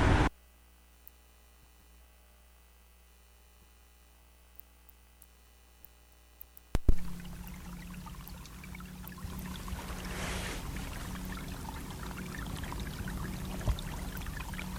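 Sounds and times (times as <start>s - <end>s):
bubbling brook in Greenland: 6.8s - 14.7s.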